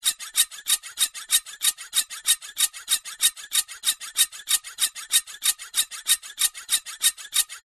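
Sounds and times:
metal scraping: 0:00.0 - 0:07.6
metal squeaking: 0:00.0 - 0:07.6.

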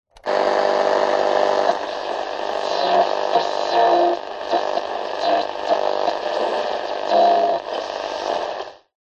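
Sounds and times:
radio static buzzing hum: 0:00.2 - 0:09.0.

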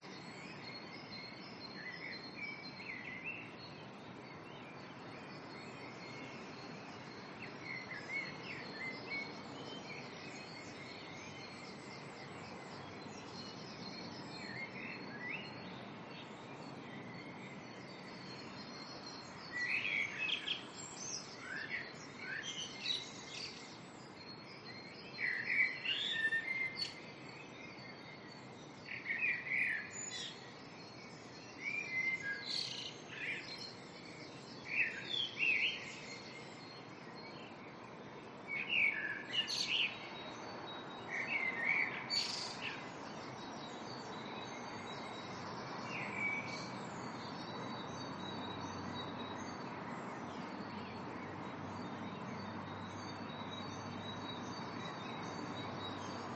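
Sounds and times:
early morning birds in a residential area: 0:00.0 - 0:56.3
distant traffic in a residential area: 0:39.9 - 0:56.3.

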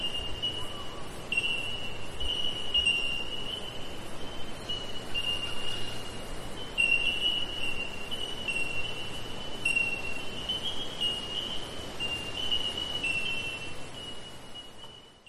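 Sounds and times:
faint ringing notes of bell miners: 0:00.0 - 0:15.2
insects buzzing in a summer forest in eastern Australia: 0:00.0 - 0:15.2.

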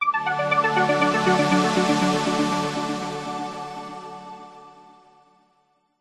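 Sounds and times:
medical science tech musical logo synth arpeggio: 0:00.0 - 0:03.8
warm synth pad: 0:00.1 - 0:04.8.

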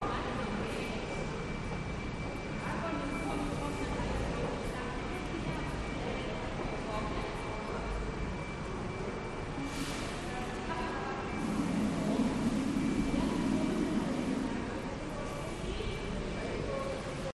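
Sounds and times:
bus station ambience in Newcastle upon Tyne UK: 0:00.0 - 0:17.3
glitched tones: 0:11.4 - 0:15.4.

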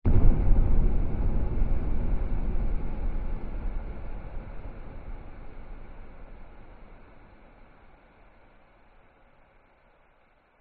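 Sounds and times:
airy cinematic boom hit: 0:00.1 - 0:06.2.

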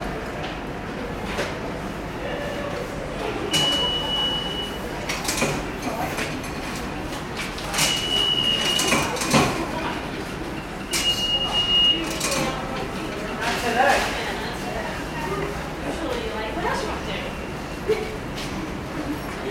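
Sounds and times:
subway train station ambience in NYC: 0:00.0 - 0:19.4
subway ticket barrier: 0:02.3 - 0:14.2.

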